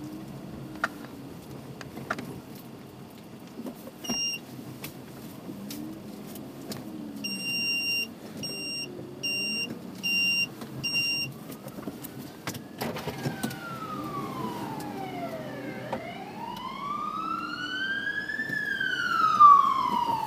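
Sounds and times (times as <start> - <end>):
traffic noise: 0.0 - 20.2
short electronic beeps of emergency vehicle siren: 7.2 - 11.3
emergency vehicle siren wailing: 10.9 - 20.2.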